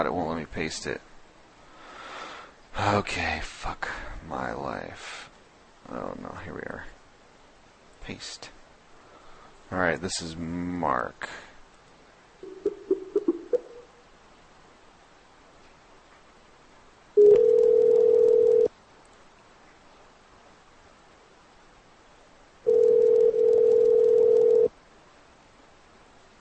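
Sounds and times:
speech: 0.0 - 1.1, 2.8 - 5.3, 5.9 - 7.0, 8.0 - 8.6, 9.7 - 11.5
phone dialing beeps: 17.2 - 18.7, 22.7 - 24.7.

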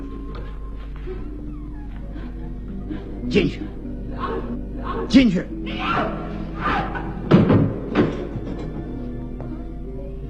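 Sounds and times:
speech: 2.9 - 3.8, 5.0 - 7.1
door being shut with dull thuds and knocks: 7.3 - 8.9.

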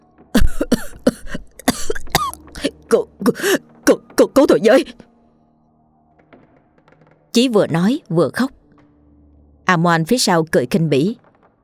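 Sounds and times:
man coughing violently: 0.4 - 4.9
speech: 2.9 - 3.6, 4.6 - 5.1, 7.4 - 8.6, 9.7 - 11.2.

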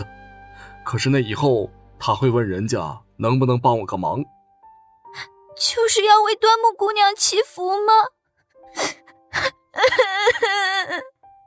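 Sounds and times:
speech: 0.9 - 4.4, 5.2 - 11.1
young woman crying, voiced by a performer: 8.6 - 11.2.

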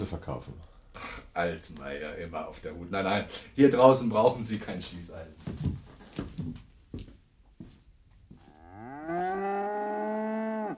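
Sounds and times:
speech: 0.0 - 6.6
cow on a farm mooing: 8.5 - 10.7.

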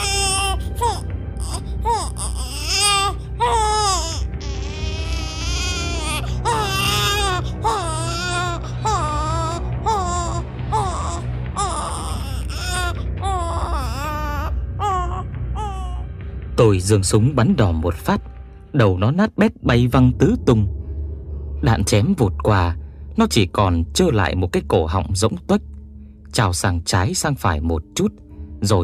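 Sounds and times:
wounded monster's shrill wailing cry: 0.0 - 16.0
speech: 16.6 - 20.8, 21.6 - 25.7, 26.3 - 28.8.

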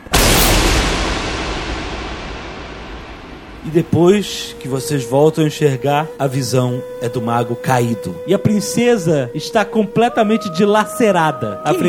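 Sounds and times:
magic spell explosion in a fantasy role-playing game: 0.0 - 4.5
speech: 3.6 - 11.8.

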